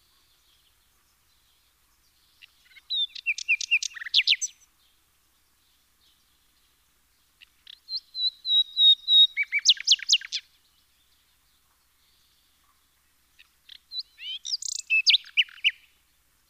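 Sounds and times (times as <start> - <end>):
Common nightingale Luscinia megarhynchos singing: 0.0 - 16.4.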